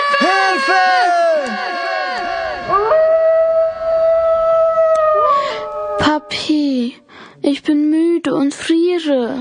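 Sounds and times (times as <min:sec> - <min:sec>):
wolves howling: 0:00.1 - 0:06.4
speech: 0:07.5 - 0:09.4.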